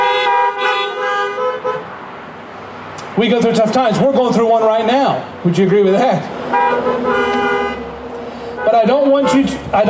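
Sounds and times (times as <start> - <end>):
car horn honking: 0.0 - 2.0, 4.6 - 7.9, 8.6 - 9.8
speech: 3.2 - 7.5, 8.7 - 9.8.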